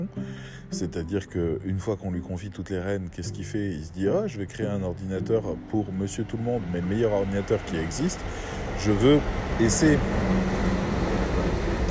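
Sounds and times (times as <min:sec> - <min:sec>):
speech: 0:00.0 - 0:10.7
train rumbling past: 0:03.3 - 0:11.8.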